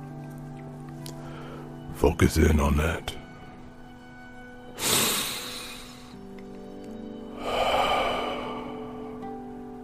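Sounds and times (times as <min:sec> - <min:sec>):
slow breathing in through nose, out through mouth: 0:01.1 - 0:01.8, 0:04.8 - 0:06.3, 0:07.3 - 0:09.8
speech: 0:02.0 - 0:03.2
steady low humming drone: 0:07.1 - 0:09.8.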